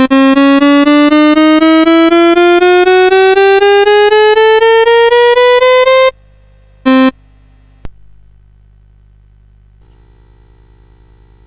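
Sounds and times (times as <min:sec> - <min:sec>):
quarter tone demo on MOS CSG8580R5 sound chip: 0:00.0 - 0:06.1, 0:06.9 - 0:07.1.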